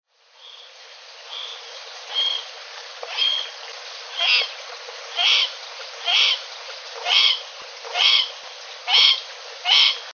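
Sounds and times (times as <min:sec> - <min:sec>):
Gephyromantis corvus frog: 0:00.4 - 0:03.5, 0:04.1 - 0:06.4, 0:07.0 - 0:08.3, 0:08.9 - 0:10.1.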